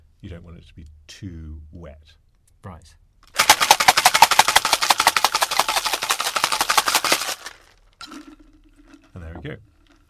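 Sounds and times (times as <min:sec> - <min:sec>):
speech: 0:00.2 - 0:03.0, 0:08.1 - 0:08.5, 0:09.2 - 0:09.8
cocktail shaker full of ice rattling while making a gin sour: 0:03.4 - 0:10.0.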